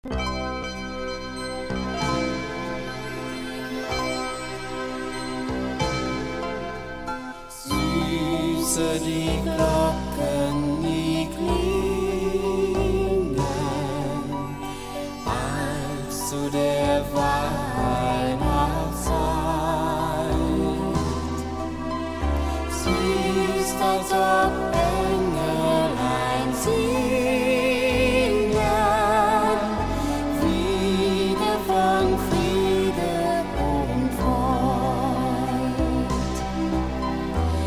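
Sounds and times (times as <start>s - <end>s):
Christmas music: 0.0s - 37.6s.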